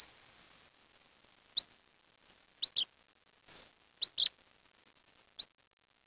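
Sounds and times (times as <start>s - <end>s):
bird chirps: 2.6s - 2.9s, 3.5s - 4.3s.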